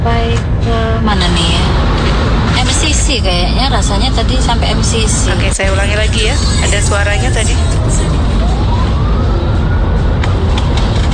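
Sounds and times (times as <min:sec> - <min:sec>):
heavy truck traffic roaring in a long line of vehicles: 0:00.0 - 0:11.1
speech: 0:02.8 - 0:08.3.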